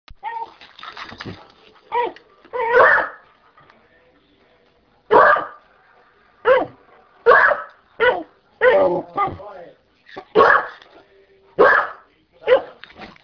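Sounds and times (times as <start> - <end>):
dog barking: 2.0 - 3.2, 5.1 - 5.6, 6.4 - 9.4, 10.4 - 10.8, 11.6 - 12.8.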